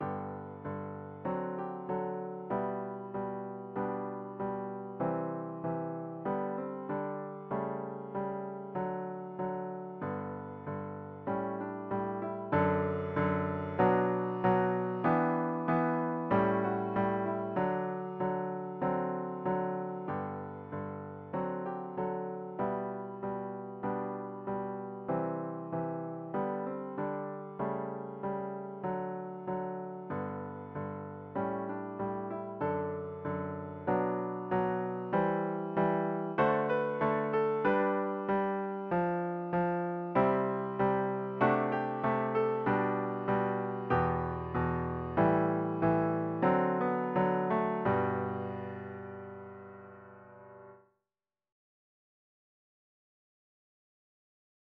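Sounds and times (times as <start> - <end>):
piano piece: 0.0 - 50.8.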